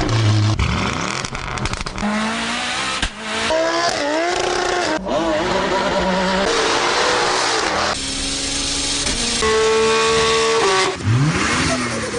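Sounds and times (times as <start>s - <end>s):
petrol car engines revving through gear changes: 0.0s - 12.1s
tire squeal: 3.4s - 8.0s, 9.1s - 12.1s.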